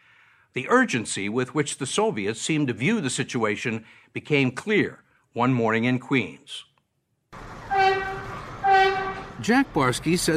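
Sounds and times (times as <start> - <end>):
speech: 0.5 - 6.7, 9.4 - 10.3
subway train rumbling in at a platform: 7.4 - 10.3
loud tonal subway train horn blasts: 7.7 - 9.4.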